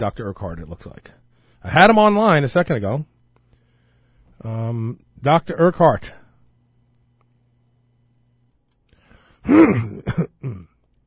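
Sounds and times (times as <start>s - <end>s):
speech: 0.0s - 3.1s, 4.4s - 6.2s, 9.4s - 10.7s
throat clearing: 9.4s - 10.9s.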